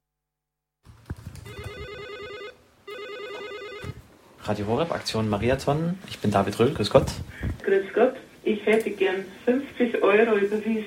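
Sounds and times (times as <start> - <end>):
telephone ringing with electronic trilling bursts: 1.4 - 4.0
speech: 4.5 - 10.8.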